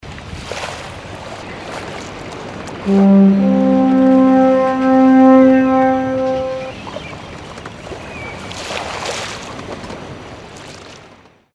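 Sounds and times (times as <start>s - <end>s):
ship horn: 2.9s - 6.8s.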